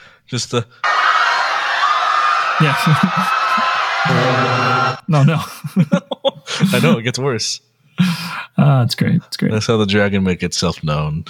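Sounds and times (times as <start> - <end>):
speech: 0.3 - 0.9, 2.6 - 11.2
crowd screaming and shouting in panic: 0.8 - 5.0
laughter: 0.8 - 7.0.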